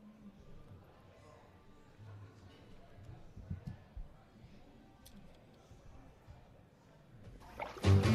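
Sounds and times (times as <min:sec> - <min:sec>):
low murky noise: 0:00.0 - 0:08.1
bathtub water splashing: 0:07.4 - 0:08.1.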